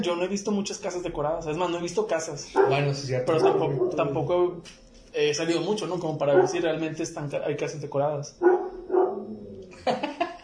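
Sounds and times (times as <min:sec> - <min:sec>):
speech: 0:00.0 - 0:08.6
pet dog giving short barks: 0:02.5 - 0:04.2, 0:06.2 - 0:06.8, 0:08.4 - 0:09.3
laughter: 0:09.7 - 0:10.4.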